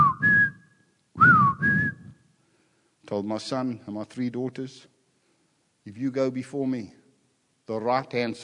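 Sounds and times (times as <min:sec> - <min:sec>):
person whistling a short two-part family call: 0:00.0 - 0:02.2
speech: 0:03.1 - 0:04.9, 0:05.8 - 0:07.0, 0:07.7 - 0:08.4.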